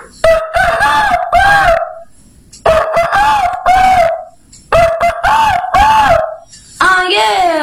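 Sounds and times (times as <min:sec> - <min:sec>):
rooster crowing: 0:00.2 - 0:02.1, 0:02.7 - 0:06.4.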